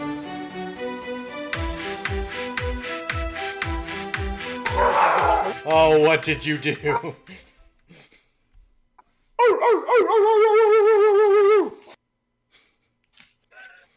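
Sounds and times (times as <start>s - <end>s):
dog giving a drawn-out wavering howl-like bark: 4.7s - 5.6s, 9.4s - 11.8s
speech: 5.6s - 7.5s.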